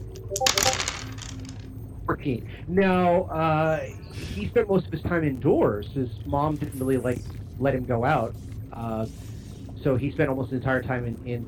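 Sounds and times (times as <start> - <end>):
dice being rolled: 0.0 - 1.7
speech: 0.3 - 0.9, 2.1 - 11.4.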